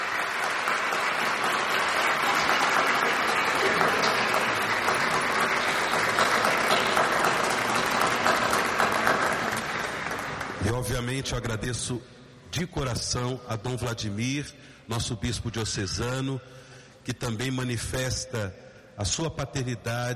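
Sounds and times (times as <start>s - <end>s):
large audience applause: 0.0s - 10.8s
speech: 10.8s - 20.1s.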